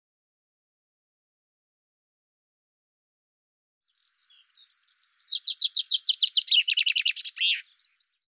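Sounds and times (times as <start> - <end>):
common chaffinch song: 3.9 - 8.3.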